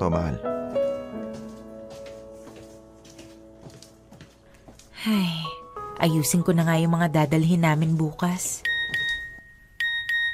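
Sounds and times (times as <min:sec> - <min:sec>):
speech: 0:00.0 - 0:00.5, 0:05.0 - 0:05.4, 0:06.0 - 0:08.7
mobile phone text message notification tone: 0:08.6 - 0:10.3.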